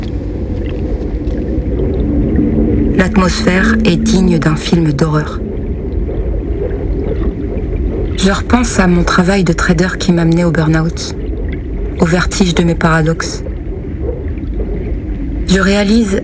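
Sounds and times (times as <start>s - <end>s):
rumbling sea heard while sheltering in a lighthouse: 0.0s - 16.2s
storm wind roaring heard while sheltering in a lighthouse: 0.0s - 16.2s
speech: 3.0s - 5.4s, 8.2s - 11.2s, 12.0s - 13.5s, 15.5s - 16.2s.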